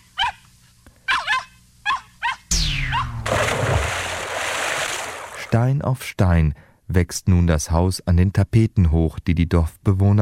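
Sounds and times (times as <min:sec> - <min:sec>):
young dog yelping barks: 0:00.0 - 0:00.5, 0:01.1 - 0:02.5
wet cement sloshing and splashing at a house construction site: 0:03.1 - 0:05.5
speech: 0:05.5 - 0:10.2.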